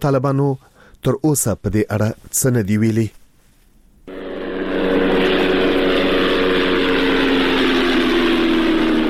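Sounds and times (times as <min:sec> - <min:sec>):
speech: 0:00.0 - 0:03.2
unmanned aircraft drone flying overhead in Ghazni province Afghanistan: 0:04.1 - 0:09.0.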